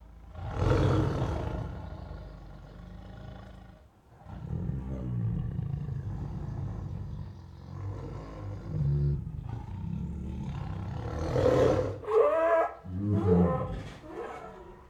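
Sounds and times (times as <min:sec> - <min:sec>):
tigers growling angrily with hoarse growls: 0:00.0 - 0:14.8.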